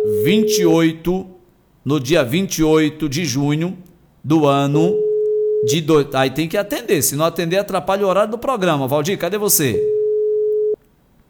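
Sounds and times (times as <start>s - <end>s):
telephone ringing tone while placing a call: 0.0s - 0.8s, 5.0s - 5.9s, 9.7s - 10.8s
speech: 0.2s - 5.0s, 5.6s - 9.9s.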